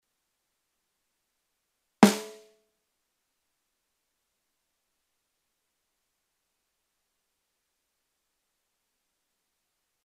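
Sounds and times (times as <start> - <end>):
acoustic snare drum single hit: 2.0 - 2.5.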